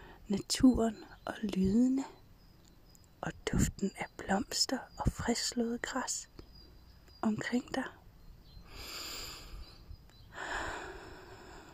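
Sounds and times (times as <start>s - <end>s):
speech: 0.3s - 2.2s, 3.2s - 6.3s, 7.2s - 8.0s
deep breath in through the nose during a guided breathing exercise: 8.7s - 9.8s, 10.4s - 11.7s.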